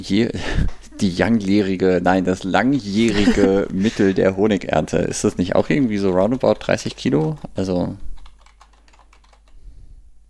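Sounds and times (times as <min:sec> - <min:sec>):
speech: 0:00.0 - 0:08.1
low steady hum: 0:00.0 - 0:10.2
laughter: 0:03.0 - 0:04.3
typing on a computer keyboard: 0:05.5 - 0:09.6.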